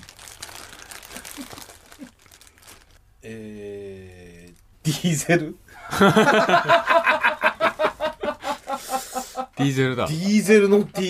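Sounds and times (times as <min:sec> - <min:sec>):
plastic bag crinkling while being pulled open: 0:00.0 - 0:03.0
speech: 0:03.2 - 0:04.2, 0:04.9 - 0:07.2, 0:09.6 - 0:11.0
laughter: 0:05.8 - 0:09.6.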